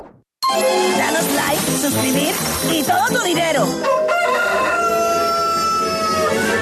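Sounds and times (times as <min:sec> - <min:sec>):
speech: 0:00.5 - 0:04.8
rooster crowing: 0:03.8 - 0:06.5.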